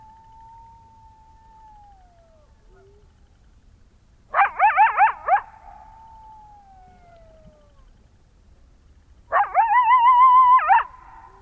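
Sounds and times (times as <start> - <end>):
coyote howling: 0.0 - 3.1, 4.3 - 7.9, 9.3 - 11.3.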